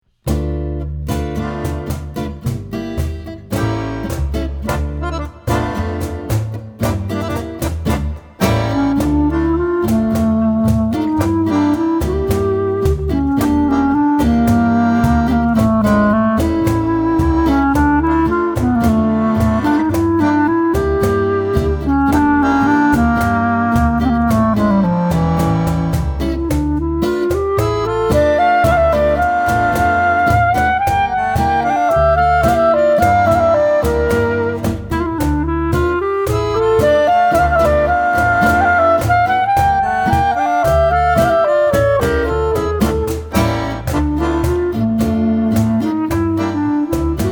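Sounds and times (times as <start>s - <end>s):
clarinet: 0.3s - 47.3s.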